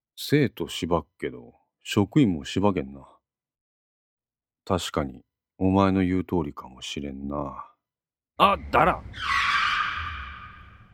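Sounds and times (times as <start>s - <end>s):
speech: 0.2s - 3.2s, 4.7s - 7.7s, 8.4s - 9.7s
car tires screeching under sudden hard braking: 8.8s - 10.9s.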